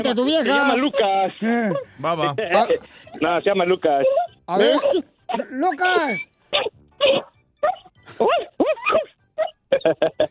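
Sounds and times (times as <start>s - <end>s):
speech: 0.0s - 9.1s, 9.7s - 10.2s
laughter: 0.5s - 3.3s, 9.7s - 10.2s
dog whining: 4.0s - 4.9s, 7.6s - 9.6s
dog barking: 7.6s - 9.6s.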